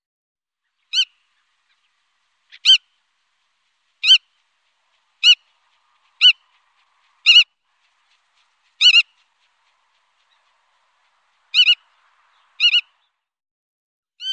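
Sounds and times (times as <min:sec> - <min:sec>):
Black-tailed godwit giving short nasal harmonic call notes: 0:04.0 - 0:13.0.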